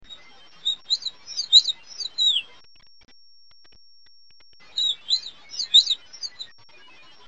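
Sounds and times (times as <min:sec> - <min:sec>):
fox sparrow nocturnal flight calls of thin high chirps: 0:00.0 - 0:02.5, 0:04.6 - 0:06.5.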